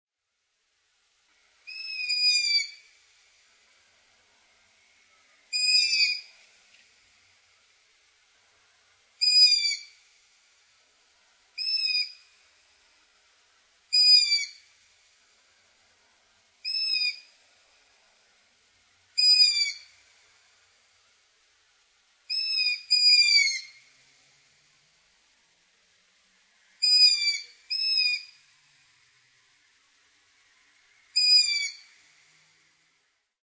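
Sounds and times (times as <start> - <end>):
juvenile bird calling: 1.7 - 2.9, 5.5 - 6.3, 9.2 - 10.0, 11.6 - 12.4, 13.9 - 14.7, 16.6 - 17.3, 19.2 - 19.9, 22.3 - 23.8, 26.8 - 28.4, 31.2 - 32.0.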